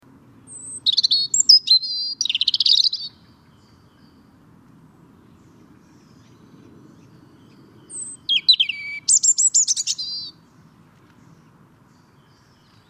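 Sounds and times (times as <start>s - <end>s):
European robin Erithacus rubecula singing: 0.4s - 4.5s, 5.2s - 12.8s.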